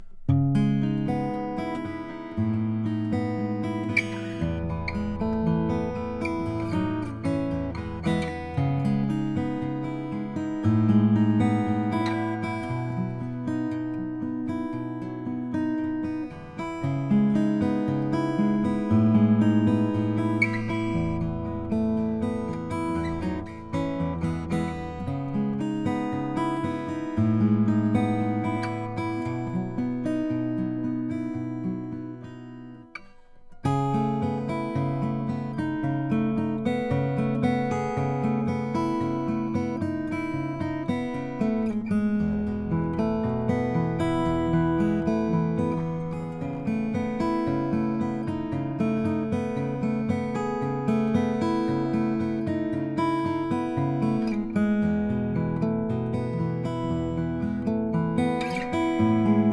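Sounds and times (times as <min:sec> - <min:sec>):
mahogany acoustic guitar: 0:00.0 - 0:59.5.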